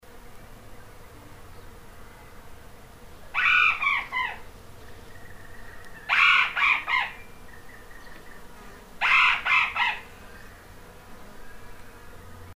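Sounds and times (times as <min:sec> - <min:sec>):
Australian owlet-nightjar calling: 0:03.3 - 0:04.4, 0:05.1 - 0:10.5.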